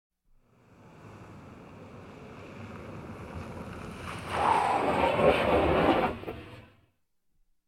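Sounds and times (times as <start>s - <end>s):
car braking abruptly: 2.6s - 6.7s.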